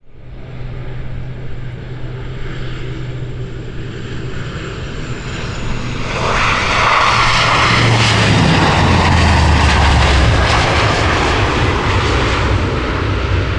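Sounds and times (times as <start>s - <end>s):
propeller plane taking off from runway: 0.0s - 13.5s.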